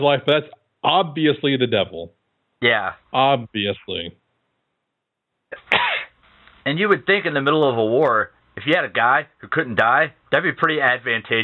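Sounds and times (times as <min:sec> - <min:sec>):
speech: 0:00.0 - 0:04.2, 0:06.6 - 0:11.4
person sneezing: 0:05.5 - 0:06.2.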